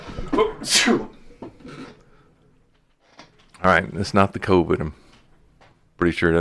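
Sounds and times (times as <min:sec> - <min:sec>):
person sneezing: 0:00.2 - 0:02.0
speech: 0:00.6 - 0:01.1, 0:03.6 - 0:05.0, 0:06.0 - 0:06.3.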